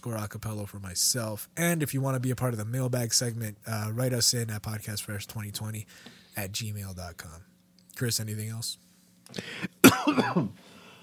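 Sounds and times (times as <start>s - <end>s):
speech: 0.0s - 10.8s
voiced rough exhale: 9.3s - 9.7s
cough: 9.7s - 10.6s.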